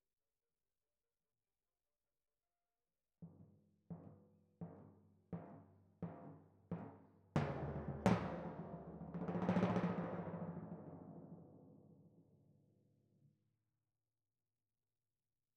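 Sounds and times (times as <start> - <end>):
timpani: 5.4 - 11.6.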